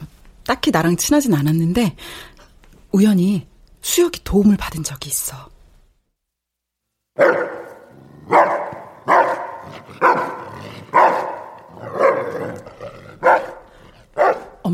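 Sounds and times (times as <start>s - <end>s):
speech: 0.5s - 2.3s, 2.9s - 5.5s
large dog barking and growling: 7.2s - 14.6s.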